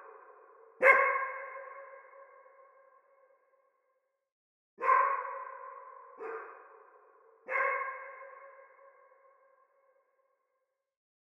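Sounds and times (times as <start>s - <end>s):
dog barking in a forest: 0.8s - 1.8s, 4.8s - 6.8s, 7.4s - 8.6s.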